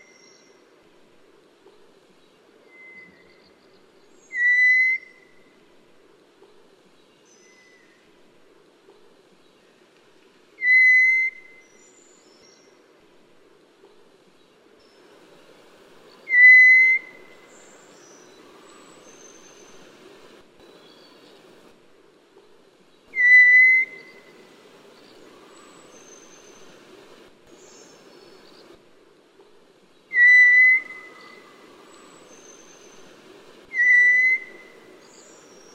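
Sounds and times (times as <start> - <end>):
scaly thrush calling: 4.3 - 5.2, 16.3 - 17.5, 23.1 - 24.5, 30.1 - 31.5, 33.7 - 35.0.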